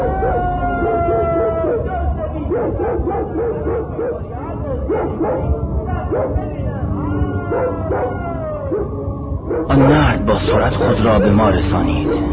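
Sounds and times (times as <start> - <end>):
dogs barking and yipping excitedly: 0.0 - 8.9, 9.5 - 9.8, 12.0 - 12.3
dogs howling whines: 0.0 - 12.3
speech: 10.4 - 12.3.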